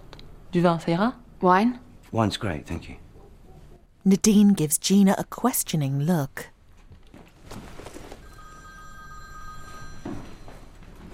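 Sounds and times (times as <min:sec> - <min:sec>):
speech: 0:00.5 - 0:03.0, 0:04.0 - 0:06.5
phone ringing with electronic trill: 0:08.1 - 0:11.1.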